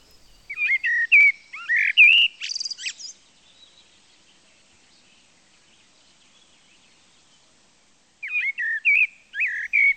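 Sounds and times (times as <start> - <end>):
blackbird singing: 0.0 - 3.9, 8.2 - 9.9.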